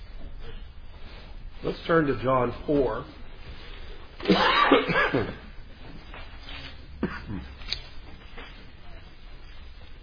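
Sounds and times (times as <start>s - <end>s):
shuffling: 0.0s - 4.4s, 5.1s - 10.0s
speech: 1.6s - 3.2s, 4.2s - 5.4s
person coughing harshly: 4.2s - 5.6s, 7.0s - 7.6s.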